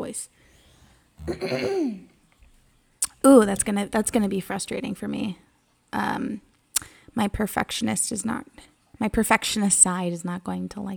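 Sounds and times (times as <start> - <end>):
speech: 0.0 - 0.4, 1.2 - 2.1, 3.2 - 10.9
throat clearing: 1.2 - 2.1.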